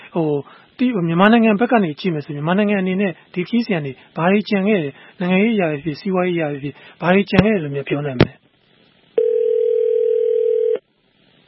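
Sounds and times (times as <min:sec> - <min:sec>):
speech: 0:00.1 - 0:08.4
telephone dial tone after a call line dropped: 0:09.2 - 0:10.8.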